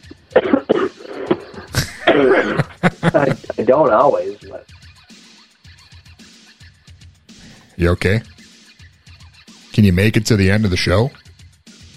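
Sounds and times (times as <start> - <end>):
person coughing: 0.2 - 3.6
laughter: 0.2 - 4.6
speech: 2.1 - 4.8, 7.8 - 8.3, 9.8 - 11.2
strained breathing: 7.3 - 7.8.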